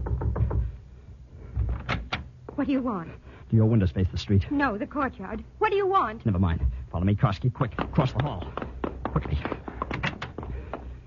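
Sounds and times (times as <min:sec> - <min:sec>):
knocking on a door: 0:00.0 - 0:00.8, 0:07.6 - 0:10.5
speech: 0:02.6 - 0:08.6, 0:09.2 - 0:09.6.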